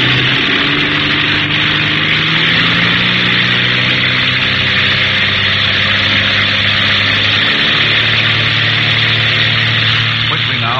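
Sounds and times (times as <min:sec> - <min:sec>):
propeller aircraft engines throttling up for formation takeoff: 0:00.0 - 0:10.7.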